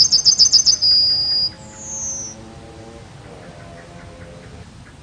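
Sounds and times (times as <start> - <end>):
yellowhammer song: 0.0 - 4.6
low hum: 0.0 - 4.9.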